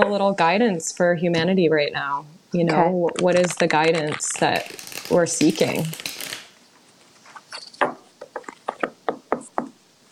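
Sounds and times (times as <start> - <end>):
speech: 0.0 - 6.3
faint shuffling rustles of tarot cards: 3.2 - 8.9
knuckles knocking on a deck of tarot cards: 7.8 - 9.8.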